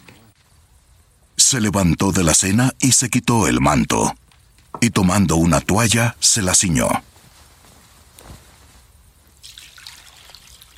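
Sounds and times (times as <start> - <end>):
speech: 1.5 - 7.1
water pouring and trickling into a basin: 9.4 - 10.7.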